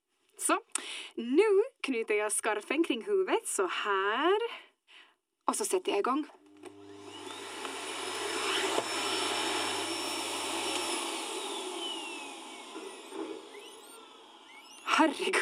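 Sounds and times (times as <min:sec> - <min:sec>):
speech: 0:00.5 - 0:04.7, 0:05.5 - 0:06.4, 0:15.0 - 0:15.4
vacuum cleaner running: 0:06.4 - 0:15.4.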